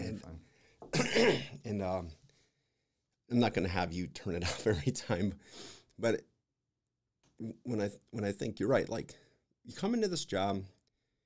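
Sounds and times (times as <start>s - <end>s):
person clearing throat: 0.9s - 1.6s
speech: 1.2s - 2.2s, 3.3s - 6.3s, 7.4s - 10.8s.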